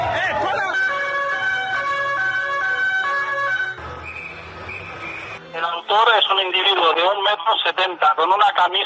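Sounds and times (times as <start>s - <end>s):
two-tone ambulance siren wailing: 0.0s - 5.3s
street traffic rumble: 0.0s - 8.8s
speech: 5.9s - 8.8s.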